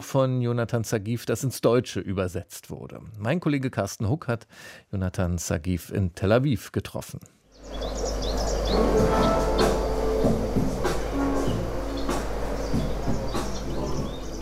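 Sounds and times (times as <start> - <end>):
speech: 0.0 - 8.1
birds chirping and tweeting: 7.5 - 14.4
electronic music track with soft rhythmic beats: 8.6 - 14.4.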